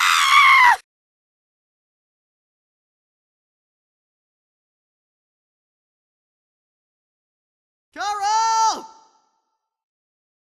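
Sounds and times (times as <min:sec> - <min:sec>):
high-pitched shrill scream: 0:00.0 - 0:00.8.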